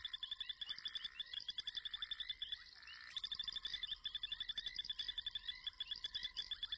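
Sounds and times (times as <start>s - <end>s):
male tremolo sand frogs calling in chorus: 0.0s - 6.7s.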